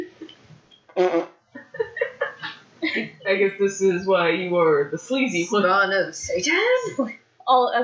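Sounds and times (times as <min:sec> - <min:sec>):
fart: 0:00.9 - 0:01.4
speech: 0:01.0 - 0:01.4, 0:02.8 - 0:07.8
laughter: 0:01.6 - 0:03.3.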